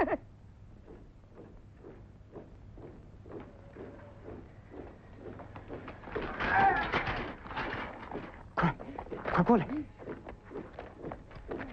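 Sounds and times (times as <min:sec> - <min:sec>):
footsteps of several German soldiers on patrol tramping along a street: 0:00.8 - 0:11.7
speech: 0:09.5 - 0:09.9.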